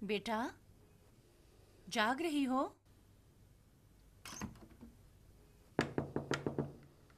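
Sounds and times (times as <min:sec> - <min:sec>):
speech: 0:00.0 - 0:00.6, 0:01.9 - 0:02.8
knocking on a door: 0:05.8 - 0:06.8.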